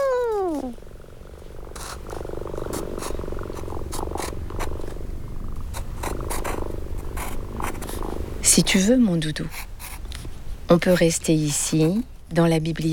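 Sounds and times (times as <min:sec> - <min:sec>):
cat meowing: 0:00.0 - 0:00.8
cat purring: 0:00.0 - 0:08.8
speech: 0:08.6 - 0:09.7, 0:10.7 - 0:12.9.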